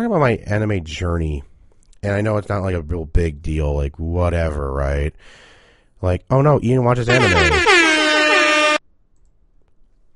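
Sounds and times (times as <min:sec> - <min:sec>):
speech: 0:00.0 - 0:07.9
air horn blast: 0:07.1 - 0:08.8.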